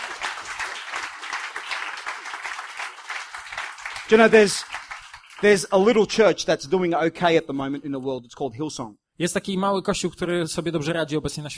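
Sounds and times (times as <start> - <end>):
church audience applauding: 0.0 - 6.2
speech: 4.1 - 4.7, 5.4 - 11.5.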